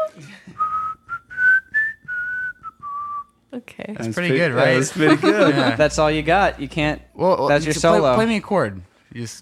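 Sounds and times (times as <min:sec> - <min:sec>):
person whistling a short tune: 0:00.0 - 0:03.4
speech: 0:03.6 - 0:09.4
laughter: 0:04.4 - 0:06.0.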